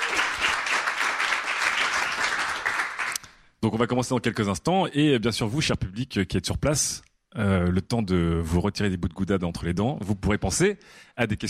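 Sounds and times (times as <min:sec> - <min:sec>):
audience applauding to welcome a guest: 0:00.0 - 0:03.2
speech: 0:03.6 - 0:11.4.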